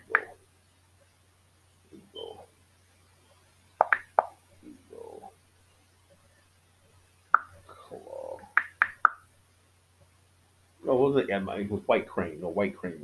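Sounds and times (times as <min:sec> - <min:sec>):
tapping on a mobile phone screen: 0:03.8 - 0:04.3
speech: 0:10.9 - 0:13.0.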